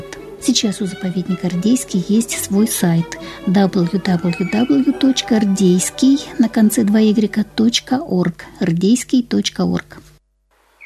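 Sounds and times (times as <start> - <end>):
thrush singing fluty phrases: 0.0 - 8.6
chaffinch singing a rapid trill: 0.0 - 10.0
speech: 0.4 - 10.1.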